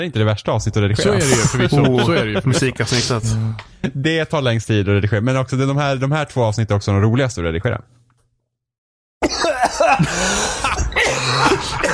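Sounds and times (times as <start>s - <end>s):
speech: 0.0s - 8.1s
laughter: 1.0s - 4.0s, 9.3s - 11.9s
person coughing in a rough hacking fit: 9.2s - 11.9s
raspy throat-clearing: 9.2s - 11.9s.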